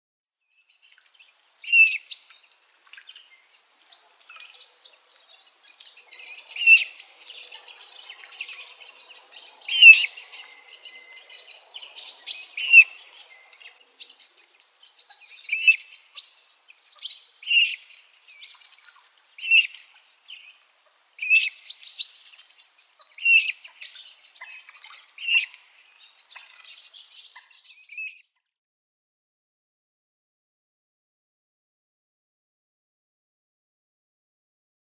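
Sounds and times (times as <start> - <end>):
Common Moorhen downy young: 0.8 - 28.3.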